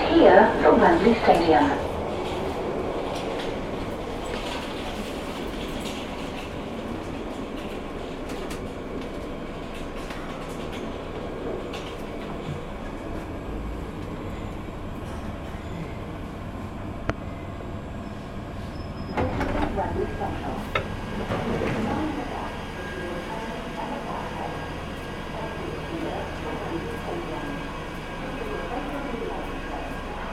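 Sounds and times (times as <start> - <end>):
Bakerloo line underground train rumble at Wembley Central station platform: 0.0 - 30.3
speech: 0.4 - 1.9
underground train clattering and squeal: 18.1 - 19.6.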